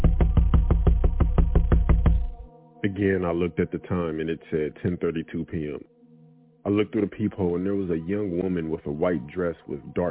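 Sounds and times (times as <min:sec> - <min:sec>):
knocking at a door: 0:00.0 - 0:02.4
speech: 0:02.8 - 0:05.9, 0:06.6 - 0:10.0.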